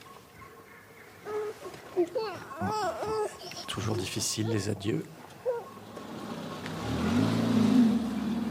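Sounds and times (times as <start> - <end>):
speech: 2.0 - 5.2
car engine revving and pulling away: 5.8 - 8.5.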